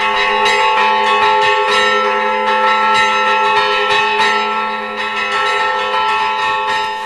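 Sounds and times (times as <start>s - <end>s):
church bells ringing a full peal in São João del-Rei, Minas Gerais, Brazil: 0.0s - 7.0s.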